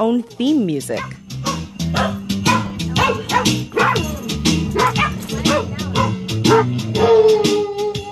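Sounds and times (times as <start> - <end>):
speech: 0.0 - 1.2, 1.9 - 2.2
pack of husky sled dogs barking and yipping: 0.9 - 7.2
husky sled dog howling: 1.5 - 8.1.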